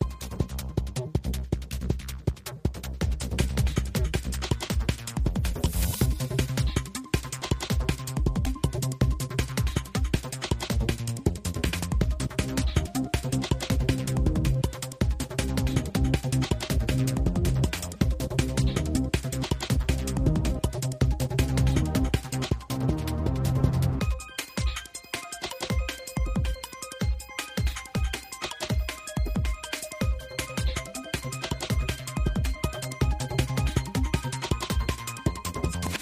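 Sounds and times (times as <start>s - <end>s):
Japan race music loop: 0.0s - 35.9s.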